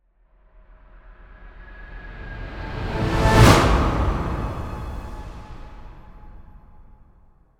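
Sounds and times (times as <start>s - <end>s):
orchestral swell rising to impact: 1.3s - 6.9s.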